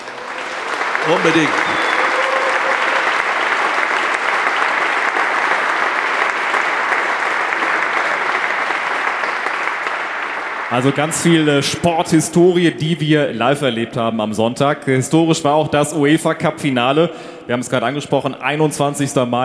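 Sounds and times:
large crowd of basketball fans clapping and cheering: 0.0s - 12.4s
whistles from basketball fans: 1.0s - 3.0s
basketball fans shouting: 1.0s - 3.1s
speech: 1.1s - 1.9s, 10.7s - 19.4s.

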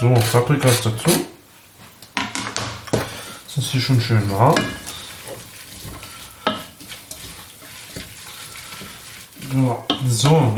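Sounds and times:
speech: 0.0s - 1.3s, 3.6s - 4.9s, 9.5s - 10.5s
faint stirring clatter: 0.0s - 1.4s, 2.0s - 10.5s
water added to hot pan of frying bell peppers sizzling: 2.8s - 10.5s.

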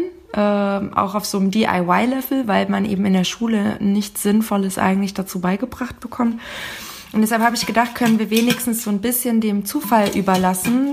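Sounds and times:
speech: 0.4s - 10.9s
metal tin with paper slips inside rattling and clinking: 7.2s - 9.0s, 9.7s - 10.9s.

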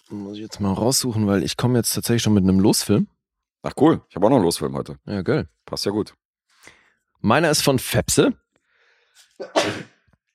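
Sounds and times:
speech: 0.1s - 8.4s, 9.4s - 10.0s
person sneezing: 9.4s - 10.0s.

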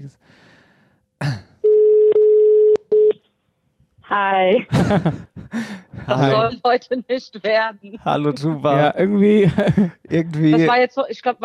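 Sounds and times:
speech: 0.0s - 0.5s, 1.2s - 1.4s, 4.1s - 11.4s
telephone line tones as a call is redialed: 1.6s - 3.2s
laughter: 4.6s - 6.6s, 8.1s - 10.8s.

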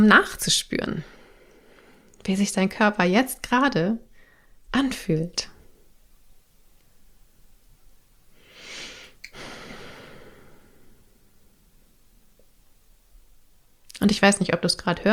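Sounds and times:
speech: 0.0s - 1.2s, 2.2s - 4.1s, 4.7s - 5.5s, 14.0s - 15.1s
faint hiss: 0.0s - 15.1s
deep breath: 4.1s - 4.6s, 8.4s - 11.8s.

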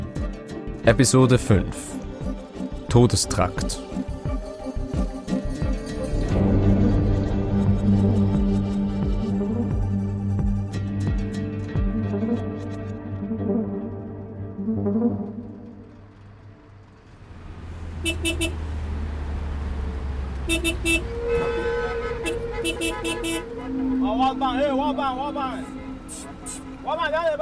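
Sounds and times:
music: 0.0s - 17.2s, 21.2s - 27.4s
speech: 0.8s - 4.1s
bus engine rumble inside a bus moving along a road: 15.4s - 27.4s
horn-like tones: 18.0s - 18.7s, 20.4s - 27.4s.

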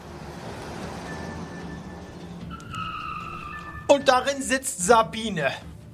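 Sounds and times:
car bursting out of undergrowth with engine rumble: 0.0s - 4.4s
car tires squealing in a skid: 0.4s - 4.1s
speech: 3.9s - 5.7s.

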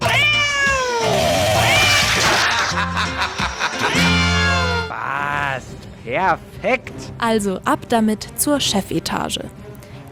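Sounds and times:
cat meowing: 0.0s - 2.7s
laughter: 1.9s - 5.1s
speech: 6.2s - 9.6s.

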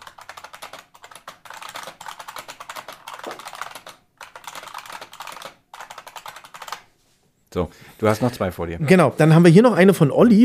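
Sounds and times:
fast typing on a clicky IBM Model M mechanical keyboard: 0.0s - 6.9s
speech: 7.6s - 10.4s.

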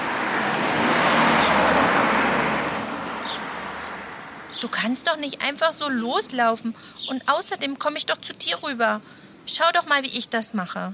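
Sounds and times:
car driving past on a street with engine and tire roar: 0.0s - 4.6s
speech: 4.6s - 10.9s.

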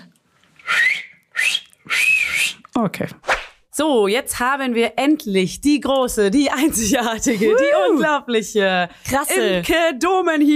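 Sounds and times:
person whistling short breathy calls with rising pitch: 0.6s - 2.6s
speech: 2.8s - 10.5s.

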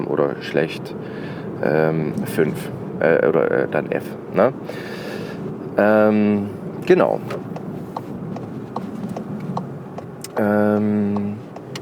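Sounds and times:
steady low rumble inside a moving car: 0.0s - 11.8s
speech: 0.2s - 5.0s, 5.8s - 7.5s, 10.4s - 11.4s
regular ticking like a turn signal: 6.8s - 11.8s.

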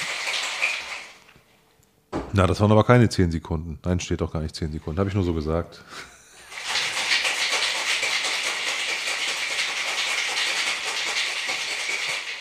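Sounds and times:
cocktail shaker shaken hard with ice: 0.0s - 1.2s, 6.5s - 12.3s
speech: 2.3s - 6.2s.

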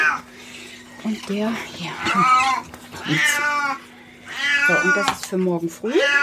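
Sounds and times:
speech: 1.0s - 3.9s, 4.7s - 6.2s
male cat with diabetes meowing on a property: 2.0s - 5.2s, 5.9s - 6.2s.

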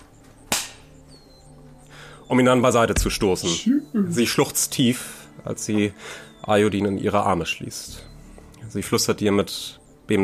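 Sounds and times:
slap across the face: 0.5s - 0.9s
speech: 2.3s - 10.2s.

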